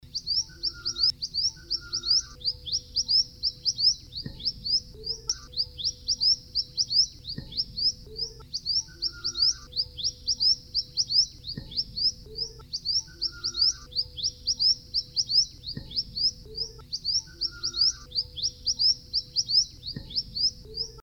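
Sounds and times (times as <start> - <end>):
sepah hutan bird calling: 0.0 - 21.0.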